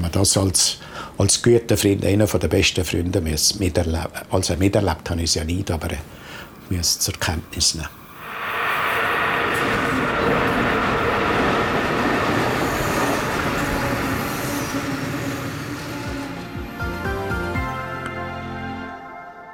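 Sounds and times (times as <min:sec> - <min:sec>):
speech: 0:00.0 - 0:08.0
rail tractor rumbling along tracks: 0:05.4 - 0:18.1
metallic squealing: 0:06.2 - 0:16.8.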